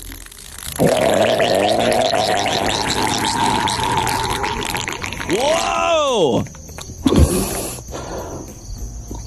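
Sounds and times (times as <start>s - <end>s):
fart-like noise made by a man's penis: 0.0s - 5.4s, 7.0s - 8.4s
speech: 5.3s - 6.6s.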